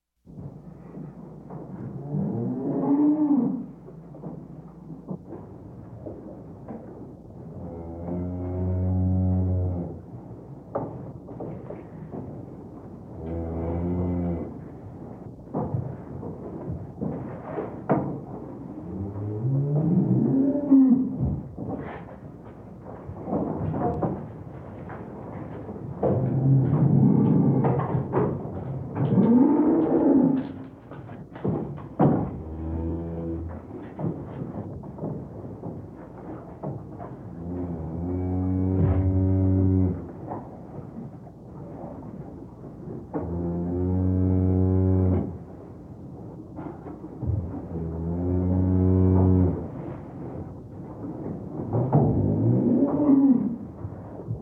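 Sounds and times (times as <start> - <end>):
cow barn sounds in the countryside: 0.2 - 54.3.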